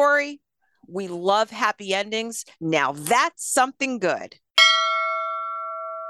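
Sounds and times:
speech: 0.2s - 4.4s
bell struck and ringing: 4.6s - 6.0s.

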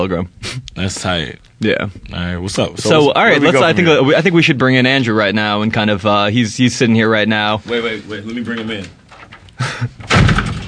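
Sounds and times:
speech: 0.0s - 9.0s, 9.6s - 10.2s
door slamming shut: 10.0s - 10.6s.

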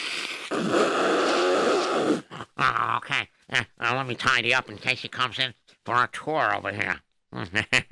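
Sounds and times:
forceful honking nose blow: 0.0s - 2.4s
speech: 0.5s - 1.1s, 2.6s - 7.9s.

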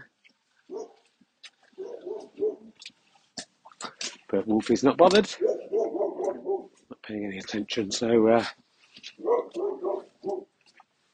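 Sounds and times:
dog barking with low gruff woofs: 0.7s - 1.0s, 1.8s - 2.7s, 5.3s - 6.7s, 9.2s - 10.5s
speech: 4.3s - 5.5s, 7.1s - 8.6s.

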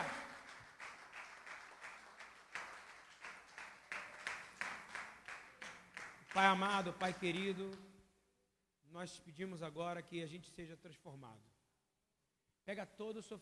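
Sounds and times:
audience clapping in a steady rhythmic beat: 0.0s - 7.9s
speech: 6.4s - 7.9s, 8.9s - 11.5s, 12.7s - 13.4s.

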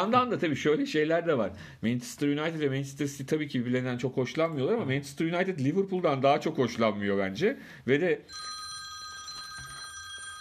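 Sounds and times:
speech: 0.0s - 8.6s
telephone ringing with an electronic trill for an incoming listener call: 8.3s - 10.3s.

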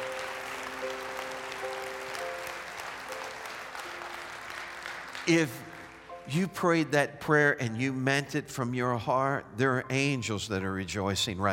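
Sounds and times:
large audience clapping: 0.0s - 6.3s
speech: 5.3s - 5.7s, 6.3s - 11.5s.

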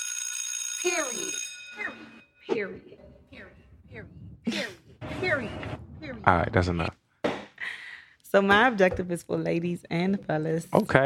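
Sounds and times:
electronic school late bell ringing: 0.0s - 2.5s
speech: 0.8s - 7.0s, 8.3s - 11.0s.

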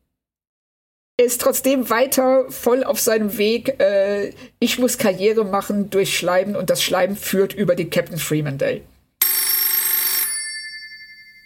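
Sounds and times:
speech: 1.2s - 8.9s
electric telephone bell ringing: 9.2s - 11.4s.

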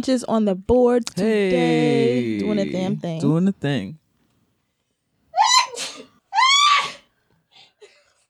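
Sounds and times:
speech: 0.0s - 4.0s
loud theatrical sneezes: 5.5s - 6.1s.

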